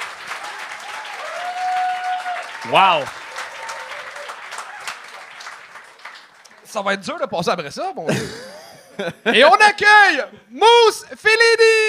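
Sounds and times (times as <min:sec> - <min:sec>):
audience applause: 0:00.0 - 0:07.0
speech: 0:02.6 - 0:03.2, 0:06.7 - 0:11.8
laughter: 0:08.1 - 0:09.6.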